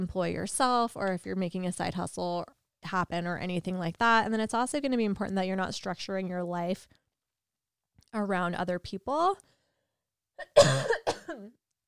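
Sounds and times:
speech: 0.0s - 7.0s, 8.1s - 9.5s, 10.4s - 11.6s
person coughing: 10.4s - 11.6s.

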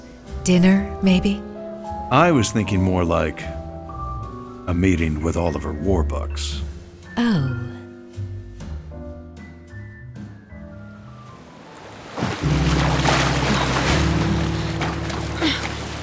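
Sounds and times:
gentle tonal music: 0.0s - 8.1s, 10.0s - 16.0s
speech: 0.5s - 1.5s, 2.1s - 3.6s, 4.7s - 7.6s
ocean waves rushing: 11.0s - 16.0s.

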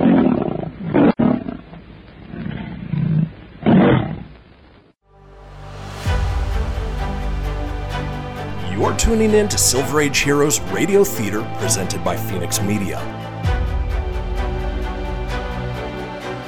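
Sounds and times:
saber-toothed tiger roaring in a lighted chamber at the end of a tunnel: 0.0s - 4.3s
loud dramatic orchestral music sting: 5.1s - 16.4s
speech: 9.1s - 13.3s.

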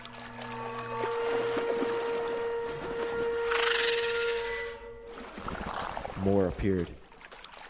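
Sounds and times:
steady droning hum: 0.0s - 5.2s
water splashing, bubbling and churning in a lake at night: 0.0s - 7.6s
speech: 6.2s - 7.0s.

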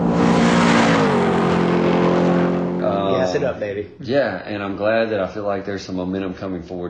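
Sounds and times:
car engine revving: 0.0s - 3.6s
speech: 3.4s - 6.8s.

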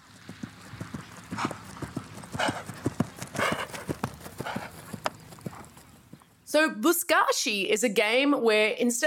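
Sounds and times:
several horses galloping: 0.0s - 6.5s
speech: 6.5s - 9.0s.

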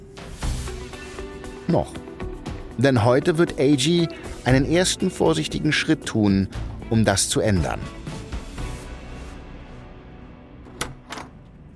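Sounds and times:
speech: 1.7s - 2.1s, 2.8s - 8.0s
sharp latch-like clicks: 10.6s - 11.6s
door opening: 10.6s - 11.7s.

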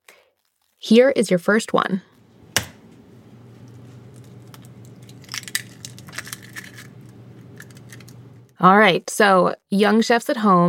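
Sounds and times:
speech: 0.8s - 2.1s, 8.6s - 10.6s
low hum: 1.4s - 8.8s
egg cracking against a hard edge: 4.1s - 8.2s
small wet crunching and shell-breaking clicks of an egg: 4.4s - 8.2s.

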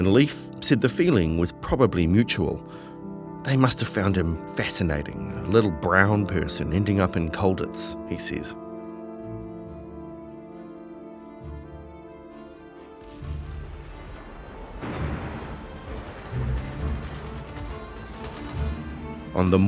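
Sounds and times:
speech: 0.0s - 8.6s, 19.4s - 19.6s
distant gunfire: 14.8s - 19.3s.

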